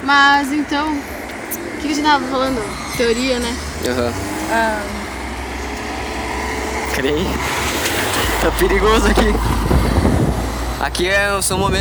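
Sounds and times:
road traffic roar on a busy street: 0:00.0 - 0:11.7
vehicle engines rumbling as vehicles pass: 0:00.0 - 0:11.7
speech: 0:00.1 - 0:05.0, 0:06.9 - 0:07.6, 0:08.4 - 0:09.6, 0:10.8 - 0:11.7.

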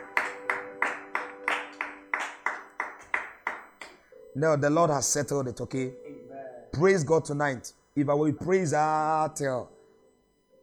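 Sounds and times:
church audience clapping after a testimony: 0:00.0 - 0:04.0
sustained organ-like tone: 0:00.0 - 0:10.6
speech: 0:04.4 - 0:06.0, 0:06.8 - 0:09.8.

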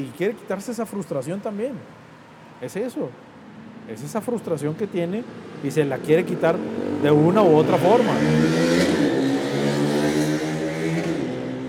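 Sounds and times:
speech: 0:00.0 - 0:03.3, 0:03.9 - 0:08.6
motorcycle engine revving: 0:05.4 - 0:11.6.

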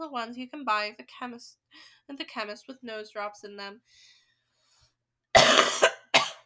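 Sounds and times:
speech: 0:00.0 - 0:04.2
person coughing with rough hacks: 0:05.4 - 0:06.4.

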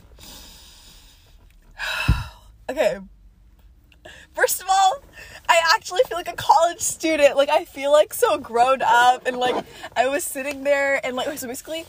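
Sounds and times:
person taking a deep breath: 0:00.1 - 0:02.4
speech: 0:02.7 - 0:03.2, 0:04.4 - 0:11.8.

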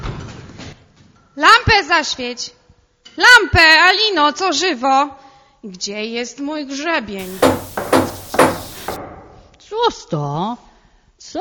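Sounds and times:
speech: 0:01.4 - 0:02.6, 0:03.2 - 0:07.6, 0:09.8 - 0:10.7
firm knocks on the wooden door of a hut: 0:07.2 - 0:09.0.

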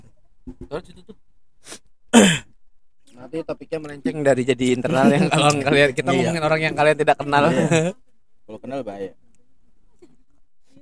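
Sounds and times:
speech: 0:00.7 - 0:02.5, 0:03.3 - 0:09.2
person clearing throat: 0:02.1 - 0:02.5
person coughing: 0:02.1 - 0:02.5.

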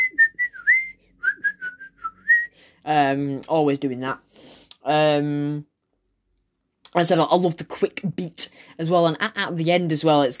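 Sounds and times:
person whistling the violin melody of a pop song: 0:00.0 - 0:02.5
speech: 0:02.8 - 0:05.7, 0:06.9 - 0:10.3.

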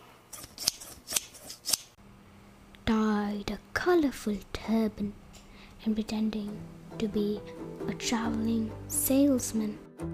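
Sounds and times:
scissors trimming a long moustache: 0:00.3 - 0:01.9
speech: 0:04.0 - 0:05.2, 0:05.8 - 0:10.1.

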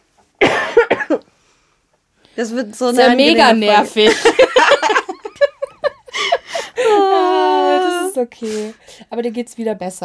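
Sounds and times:
person coughing: 0:00.4 - 0:01.2
speech: 0:02.4 - 0:04.4, 0:08.2 - 0:10.0
laughter: 0:04.0 - 0:08.1.

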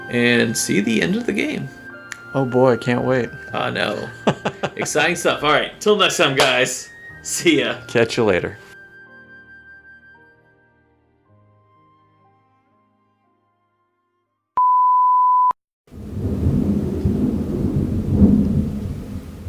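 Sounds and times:
speech: 0:00.1 - 0:08.7
laughter: 0:03.9 - 0:05.4
single steady electronic beep: 0:14.6 - 0:15.6
loud thunder rumbling: 0:15.9 - 0:19.4.

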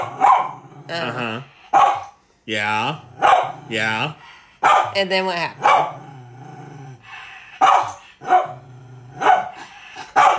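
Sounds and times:
dog barking: 0:00.0 - 0:00.6, 0:01.7 - 0:02.1, 0:03.2 - 0:03.6, 0:04.6 - 0:05.0, 0:05.6 - 0:06.0, 0:07.6 - 0:08.6, 0:09.2 - 0:10.3
speech: 0:00.9 - 0:01.6, 0:02.4 - 0:06.0.

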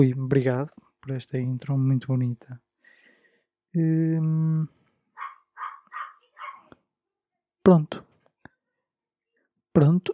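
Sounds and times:
speech: 0:00.0 - 0:02.6, 0:03.7 - 0:04.8, 0:07.6 - 0:08.1, 0:09.8 - 0:10.1
dog barking: 0:05.2 - 0:06.8.

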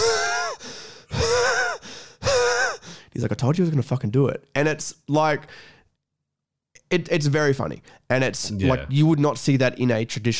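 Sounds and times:
voice imitating gasping breaths after a punch to the throat: 0:00.0 - 0:03.2
speech: 0:03.2 - 0:05.8, 0:06.9 - 0:10.3.

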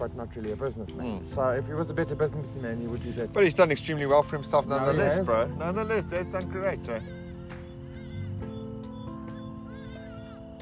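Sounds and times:
speech: 0:00.0 - 0:07.2
birds calling with goose-like honking cries outside: 0:02.2 - 0:10.5.

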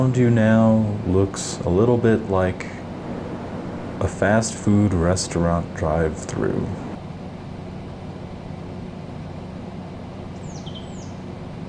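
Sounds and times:
speech: 0:00.0 - 0:02.8, 0:04.0 - 0:06.9
steady low rumble and hiss: 0:00.0 - 0:11.6
faint muffled bird chirps through a car window: 0:10.4 - 0:11.6.

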